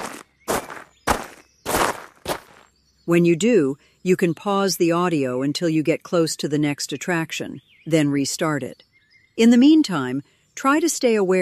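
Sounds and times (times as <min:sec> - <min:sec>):
crunchy scuffing footsteps walking: 0:00.0 - 0:02.7
speech: 0:03.1 - 0:11.4.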